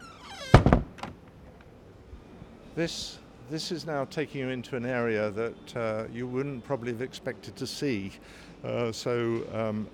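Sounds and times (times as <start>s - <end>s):
door creaking on its hinge: 0.0s - 1.2s
speech: 2.8s - 9.9s.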